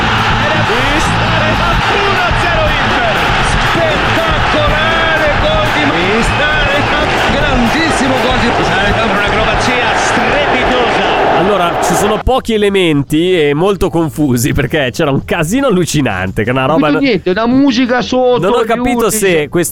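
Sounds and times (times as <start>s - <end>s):
excited Italian goal commentary: 0.0s - 12.3s
stadium crowd cheering after a goal at a football match: 0.0s - 12.3s
speech: 12.3s - 19.7s.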